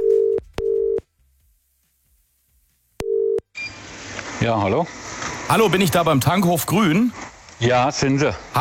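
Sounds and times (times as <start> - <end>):
telephone ringback tone in short paired buzzes: 0.0 - 1.0, 3.0 - 3.8
speech: 4.4 - 8.6.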